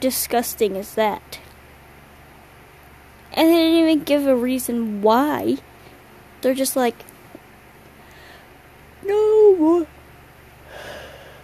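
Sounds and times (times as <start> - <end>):
speech: 0.0 - 1.4, 3.4 - 5.7, 6.4 - 7.1, 9.0 - 9.9
breathy yawn: 10.7 - 11.4.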